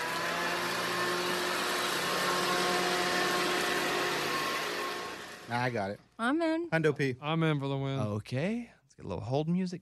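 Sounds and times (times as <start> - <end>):
paper shredder running: 0.0 - 5.8
speech: 5.5 - 9.7.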